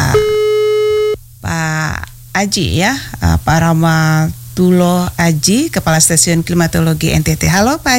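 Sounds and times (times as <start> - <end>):
telephone busy tone after a dropped call: 0.1 - 1.2
speech: 2.4 - 7.9.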